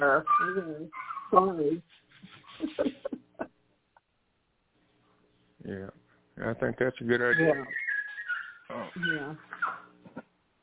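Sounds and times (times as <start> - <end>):
dog whimpering: 0.0 - 1.6, 7.2 - 9.8
speech: 0.0 - 1.9, 6.8 - 7.8
laughter: 2.3 - 3.5.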